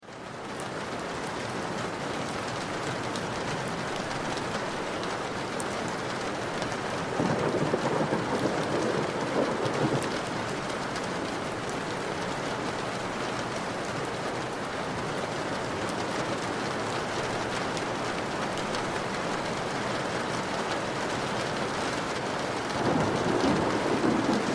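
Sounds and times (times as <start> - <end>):
rain on window sill: 0.0 - 24.5
distant thunder: 7.0 - 11.8, 22.7 - 24.5.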